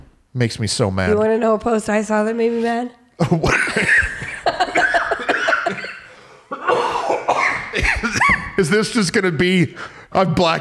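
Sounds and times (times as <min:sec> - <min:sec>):
speech: 0:00.4 - 0:04.1, 0:08.0 - 0:10.5
laughter: 0:03.2 - 0:06.2, 0:07.7 - 0:08.7
person coughing harshly: 0:04.7 - 0:08.6.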